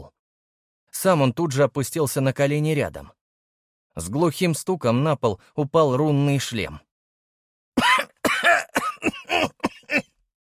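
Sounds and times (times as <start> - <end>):
speech: 1.0 - 3.2, 4.0 - 6.9
man coughing on the stone floor of a dim hall: 7.8 - 10.2.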